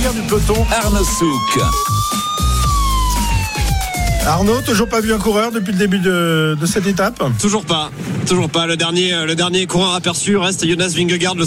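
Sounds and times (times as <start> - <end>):
driving rhythmic electronic beat in a radio jingle: 0.0 - 7.5
siren tone wailing in a radio jingle: 0.0 - 8.0
speech: 0.1 - 2.3, 4.2 - 11.4.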